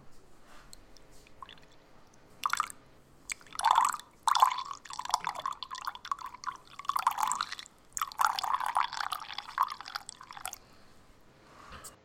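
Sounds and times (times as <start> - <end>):
drink pouring into a glass: 1.3 - 1.8, 2.4 - 10.7.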